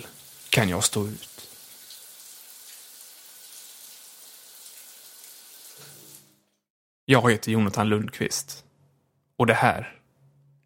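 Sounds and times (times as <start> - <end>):
speech: 0.0 - 1.5, 7.1 - 8.6, 9.4 - 10.0
hot water running from a shower: 0.0 - 6.6.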